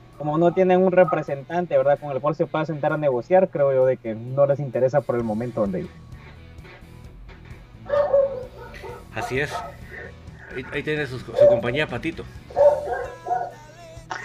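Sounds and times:
speech: 0:00.2 - 0:06.1, 0:09.2 - 0:09.8, 0:10.5 - 0:12.6
neighbour's dog barking across the street: 0:07.8 - 0:10.2, 0:11.3 - 0:13.6.

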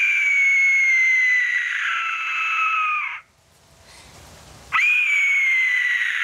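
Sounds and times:
loud sustained high-pitched eerie mummy or zombie-like scream: 0:00.0 - 0:03.3, 0:04.7 - 0:06.2.

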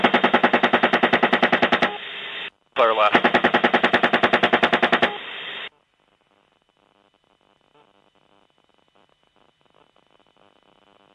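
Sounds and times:
machine gun burst aimed at a disabled van: 0:00.0 - 0:02.0, 0:03.0 - 0:05.5.

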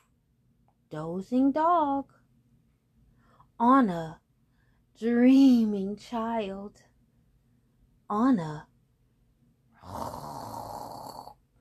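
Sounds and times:
speech: 0:00.9 - 0:02.2, 0:03.6 - 0:04.2, 0:05.0 - 0:06.9, 0:08.1 - 0:08.7
grandmother snoring on a cozy bed: 0:09.8 - 0:11.4.

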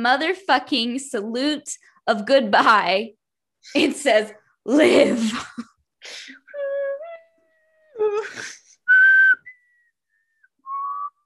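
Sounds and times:
speech: 0:00.0 - 0:06.4, 0:08.0 - 0:08.6
person attempting to whistle: 0:08.4 - 0:11.2.

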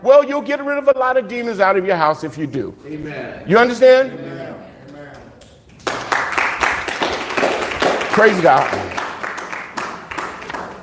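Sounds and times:
speech: 0:00.0 - 0:04.6, 0:08.2 - 0:09.0
audience clapping: 0:05.2 - 0:10.8.

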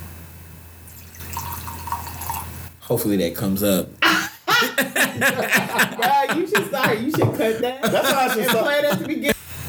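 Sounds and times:
liquor being poured: 0:00.9 - 0:02.7
speech: 0:02.9 - 0:09.4
laughter: 0:04.0 - 0:09.4.

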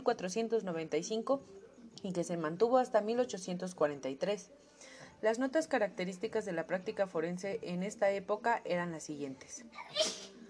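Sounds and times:
speech: 0:00.0 - 0:10.2
person sneezing: 0:09.8 - 0:10.3.

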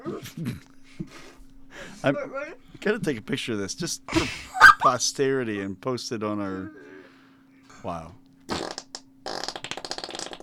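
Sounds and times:
speech: 0:00.2 - 0:01.2, 0:02.0 - 0:06.9, 0:07.8 - 0:08.2
wet sputtering arm fart made with the hand against the arm: 0:08.5 - 0:10.4.

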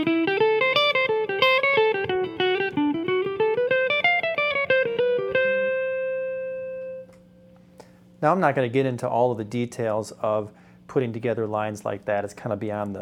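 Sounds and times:
fast improvised melodic line on an electric instrument with effects over chord changes: 0:00.0 - 0:07.5
speech: 0:08.2 - 0:12.9.

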